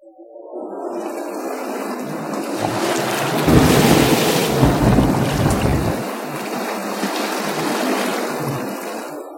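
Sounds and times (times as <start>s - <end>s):
wind in a violent storm at sea: 0.0s - 9.3s
deep rumbling thunder: 2.5s - 6.4s
heavy rain in a violent storm at sea: 2.5s - 9.0s.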